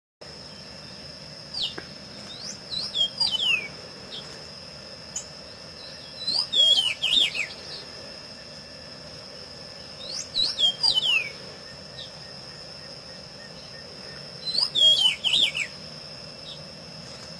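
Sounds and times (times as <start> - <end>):
thin high hum: 0.2 - 17.3
Pedro-ceroulo singing looping whistles: 1.6 - 3.7, 5.9 - 7.6, 10.0 - 12.1, 14.4 - 15.8.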